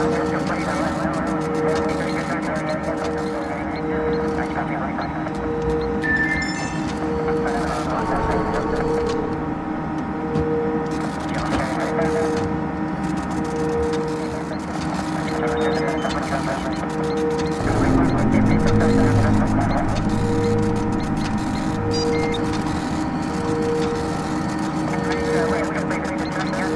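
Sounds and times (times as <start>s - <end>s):
spaceship ambience: 0.0s - 26.7s.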